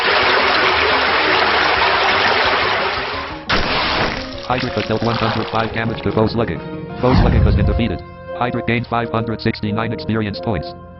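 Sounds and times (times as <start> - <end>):
video game water attack gushing water: 0.0 - 6.2
speech: 4.5 - 10.8.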